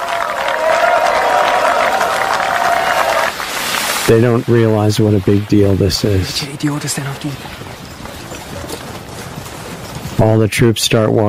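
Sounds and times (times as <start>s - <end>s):
faint cheering: 0.0s - 4.8s
dense steady clapping from people on both sides: 0.0s - 6.0s
speech: 4.1s - 7.8s, 10.2s - 11.2s.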